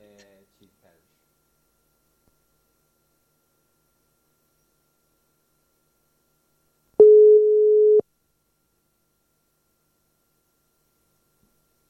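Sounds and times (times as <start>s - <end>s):
steady telephone call tone while dialing: 7.0s - 8.0s.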